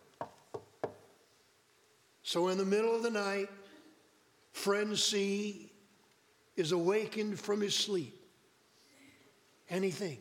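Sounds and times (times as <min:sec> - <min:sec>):
firm knocks on a wooden door: 0:00.2 - 0:01.1
speech: 0:02.3 - 0:03.6, 0:04.6 - 0:05.8, 0:06.6 - 0:08.2, 0:09.7 - 0:10.1.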